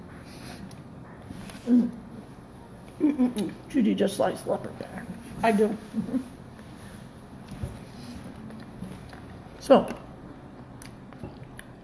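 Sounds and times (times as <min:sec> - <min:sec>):
two people chewing food: 0:00.1 - 0:03.7, 0:06.5 - 0:11.8
speech: 0:01.7 - 0:02.0, 0:03.0 - 0:06.4, 0:09.7 - 0:10.0.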